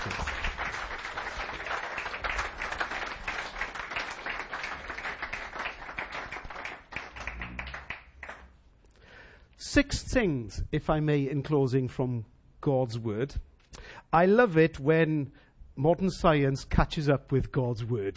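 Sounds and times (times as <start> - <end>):
audience applause: 0.0 - 8.6
speech: 9.7 - 13.5, 14.1 - 18.1.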